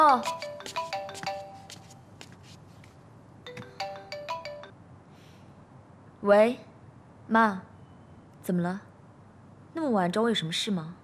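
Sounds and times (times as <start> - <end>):
speech: 0.0 - 0.7, 6.2 - 6.7, 7.3 - 7.7, 8.5 - 8.9, 9.8 - 11.0
phone ringtone ringing: 0.0 - 2.1, 3.5 - 4.8.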